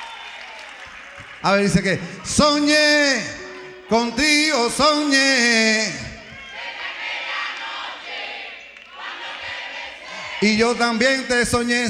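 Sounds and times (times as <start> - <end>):
audience applauding and cheering at a live concert: 0.0 - 11.4
speech: 1.4 - 6.0, 10.4 - 11.8.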